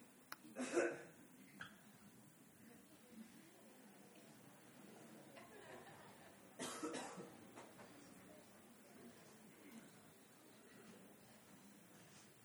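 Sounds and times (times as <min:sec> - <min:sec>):
low murmuring voices: 0:00.4 - 0:12.3
person coughing to clear the throat: 0:00.6 - 0:01.1, 0:06.6 - 0:07.3
laughter: 0:04.7 - 0:07.9.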